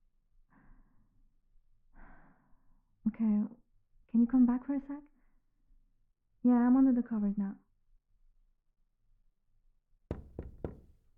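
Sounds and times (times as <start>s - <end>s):
speech: 3.2s - 5.1s, 6.4s - 7.6s
firm knocking on a door: 10.1s - 11.0s.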